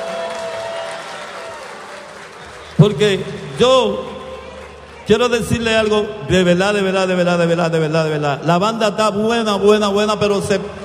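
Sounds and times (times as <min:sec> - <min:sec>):
audience applause for a band: 0:00.0 - 0:05.7
speech: 0:02.8 - 0:04.1, 0:05.1 - 0:10.8.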